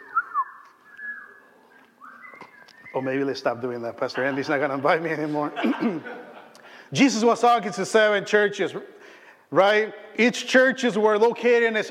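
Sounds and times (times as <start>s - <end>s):
several audience members whistling: 0.0s - 3.4s
speech: 2.9s - 6.3s, 6.9s - 11.8s
laughter: 3.9s - 6.8s.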